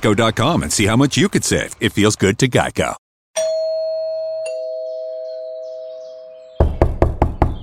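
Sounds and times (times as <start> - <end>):
speech: 0.0 - 3.5
doorbell chime: 3.4 - 6.6
firm knocks on a door: 6.6 - 7.6.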